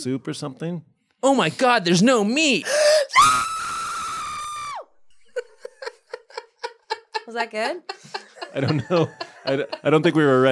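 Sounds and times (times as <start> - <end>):
speech: 0.0 - 3.5, 7.3 - 10.4
loud sustained high-pitched human scream: 3.1 - 4.8
laughter: 5.2 - 10.4.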